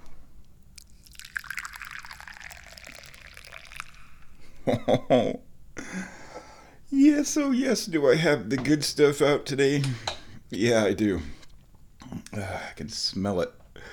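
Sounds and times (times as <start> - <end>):
tea being poured: 0.8 - 4.4
speech: 4.7 - 5.5, 6.9 - 11.4, 12.4 - 13.6.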